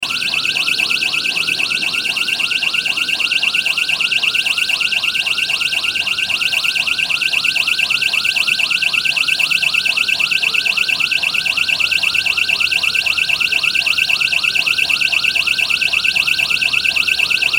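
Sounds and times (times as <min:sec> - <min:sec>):
alarm going off: 0:00.0 - 0:17.5.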